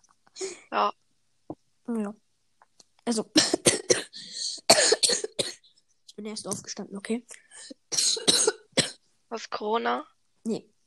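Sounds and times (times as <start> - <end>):
speech: 0.7 - 1.0, 1.9 - 2.2, 3.1 - 3.6, 6.2 - 7.8, 9.3 - 10.8
person coughing harshly: 3.4 - 5.7, 7.6 - 9.0.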